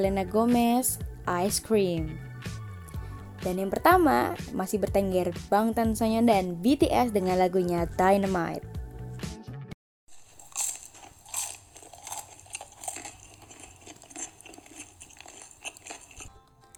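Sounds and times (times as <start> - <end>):
speech: 0.0 - 2.6, 3.4 - 8.7
biting and chewing a crunchy chicken and carrot nugget: 10.1 - 16.7.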